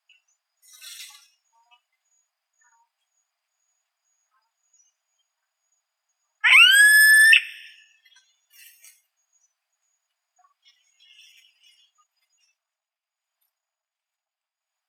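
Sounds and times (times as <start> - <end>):
Yellow-headed caracara Milvago chimachima screeching call: 6.4 - 8.0.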